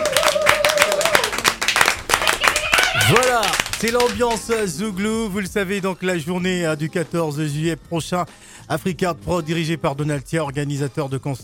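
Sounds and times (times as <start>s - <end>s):
small group applauding in a studio: 0.0s - 4.8s
speech: 3.1s - 11.4s.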